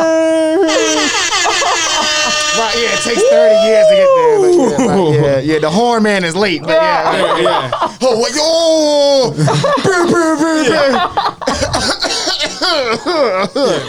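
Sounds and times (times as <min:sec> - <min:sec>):
strained voiced sounds: 0:00.0 - 0:13.8
speech: 0:02.8 - 0:13.8
chuckle-like breaths: 0:11.3 - 0:13.8
person coughing: 0:11.5 - 0:13.8.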